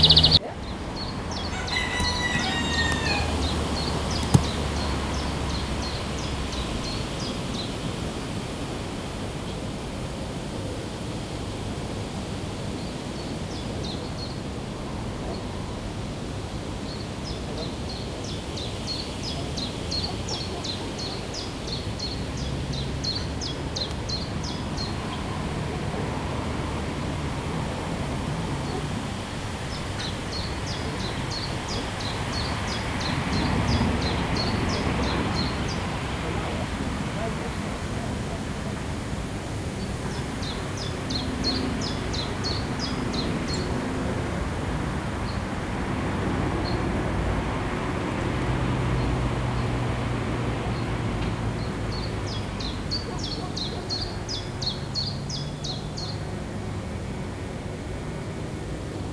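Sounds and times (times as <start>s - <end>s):
wind: 0.0s - 59.1s
rooster: 1.4s - 3.6s.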